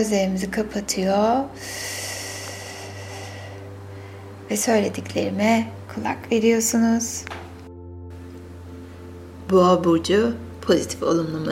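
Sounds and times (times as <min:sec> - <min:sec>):
speech: 0:00.0 - 0:02.0, 0:04.5 - 0:07.4, 0:09.5 - 0:11.4
long deep inhale: 0:01.6 - 0:04.5.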